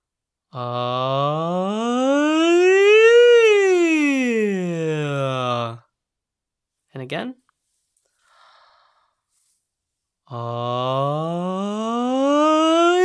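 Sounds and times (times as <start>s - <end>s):
speech: 0.5s - 1.2s
single sustained sung voice sliding from ah to e vowel: 0.6s - 5.8s, 10.3s - 13.0s.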